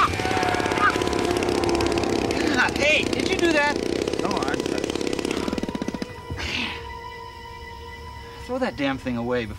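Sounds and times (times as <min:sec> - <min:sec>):
small model airplane engine running: 0:00.0 - 0:06.1
speech: 0:08.6 - 0:09.5.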